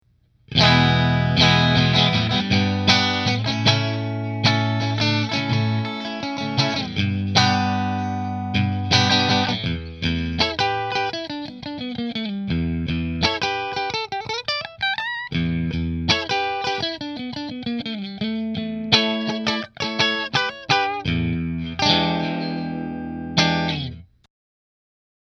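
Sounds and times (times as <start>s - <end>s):
Fender electric guitar in position 3: 0.5s - 24.2s.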